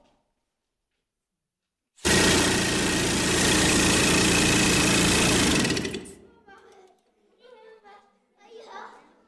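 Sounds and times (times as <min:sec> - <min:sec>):
pneumatic rock drill running in mine: 0:02.0 - 0:06.2
people talking in a reverberant space: 0:06.3 - 0:09.2.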